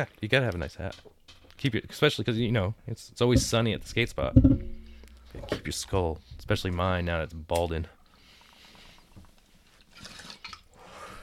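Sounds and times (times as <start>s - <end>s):
speech: 0.0s - 4.6s, 5.4s - 8.0s
bong water bubbling during a hit: 3.4s - 5.6s.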